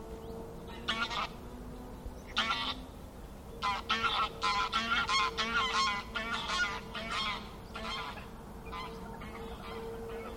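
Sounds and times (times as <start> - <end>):
steady low humming tone: 0.0 - 10.3
flocks of geese honking in fields by the River Thame in England: 0.7 - 1.5, 2.3 - 2.9, 3.6 - 10.3.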